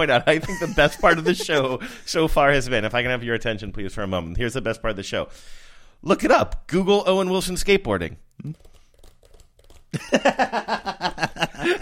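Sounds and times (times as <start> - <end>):
laughter: 0.0 - 1.9, 10.0 - 11.7
speech: 0.0 - 8.7, 9.9 - 11.7
computer keyboard typing: 8.4 - 10.2.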